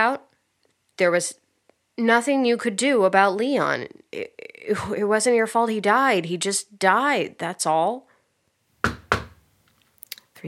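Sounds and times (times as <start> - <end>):
speech: 0.0 - 0.3, 1.0 - 1.4, 2.0 - 8.1
firm knocks on a door: 8.8 - 9.4.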